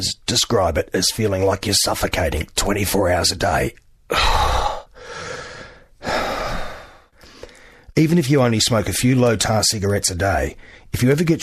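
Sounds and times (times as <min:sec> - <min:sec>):
speech: 0:00.0 - 0:05.2, 0:08.0 - 0:11.4
laboured rasping breathing as in late-stage emphysema: 0:04.1 - 0:07.9.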